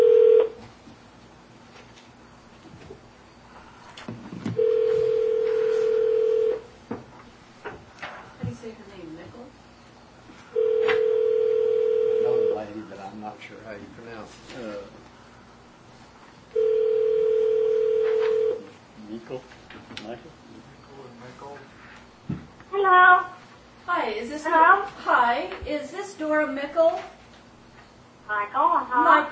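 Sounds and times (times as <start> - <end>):
steady electronic telephone line tone: 0.0 - 0.6, 4.6 - 6.7, 10.5 - 12.7, 16.5 - 18.7
room noise: 0.0 - 29.3.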